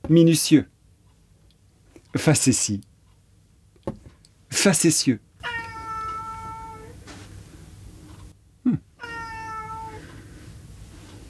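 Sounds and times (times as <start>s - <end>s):
speech: 0.1s - 0.8s, 2.1s - 2.9s, 4.5s - 5.6s
cat meowing in long drawn-out cries: 5.4s - 7.0s, 9.0s - 10.1s.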